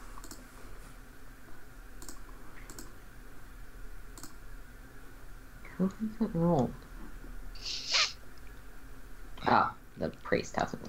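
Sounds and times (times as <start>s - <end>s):
hiss: 0.0s - 9.9s
mouse clicks on a screen circle: 2.0s - 2.9s, 4.2s - 4.4s
speech: 5.8s - 6.8s, 9.5s - 10.8s.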